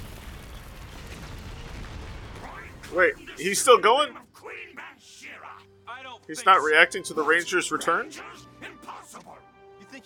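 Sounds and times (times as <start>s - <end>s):
explosion destroying a building in a town: 0.0s - 3.3s
speech: 2.9s - 4.3s, 6.3s - 8.5s.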